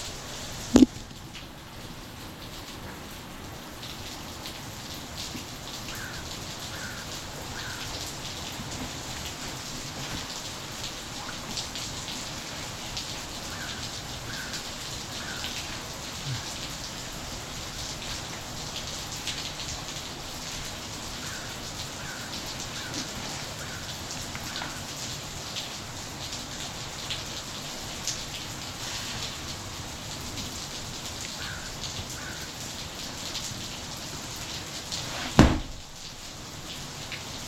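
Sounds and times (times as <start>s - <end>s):
steady rain falling: 0.0s - 37.4s.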